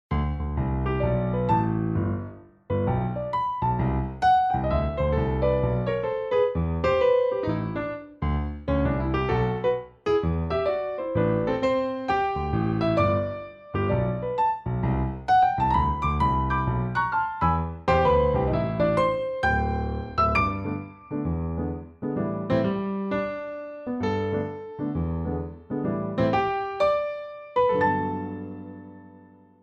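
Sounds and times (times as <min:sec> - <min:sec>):
Samsung Galaxy Z Fold 3 jazz piano ringtone: 0:00.5 - 0:29.0.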